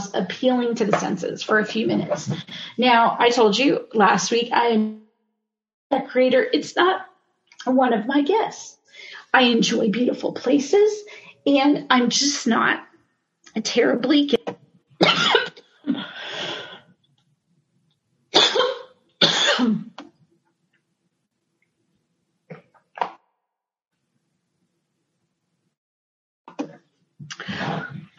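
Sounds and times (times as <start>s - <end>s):
speech: 0.1s - 5.0s, 5.9s - 12.9s, 13.6s - 14.6s
person coughing in harsh bursts: 15.0s - 15.6s, 18.4s - 19.8s.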